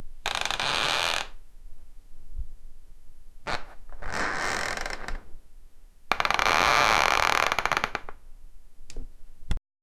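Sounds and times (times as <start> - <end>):
floor creaking: 0.2 - 1.4, 3.4 - 5.4, 6.1 - 8.2.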